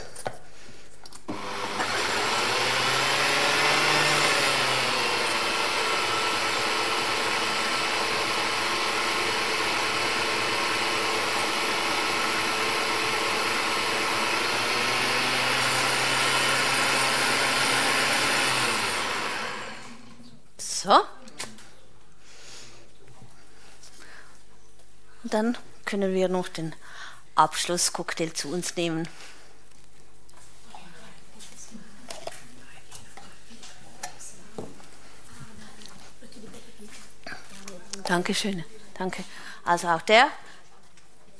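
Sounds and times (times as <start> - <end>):
kitchen blender running: 1.3 - 20.2
speech: 25.4 - 29.3, 38.1 - 40.4.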